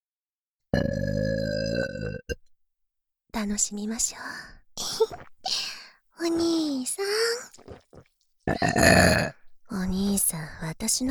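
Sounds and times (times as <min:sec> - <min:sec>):
speech: 0:00.7 - 0:01.2, 0:03.4 - 0:11.1
loud deliberate burp: 0:00.7 - 0:02.4, 0:07.5 - 0:09.4.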